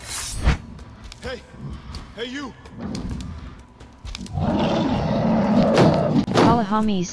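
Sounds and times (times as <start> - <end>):
speech: 1.2 - 3.3, 6.6 - 7.1
massive angry bear roaring: 4.2 - 6.3.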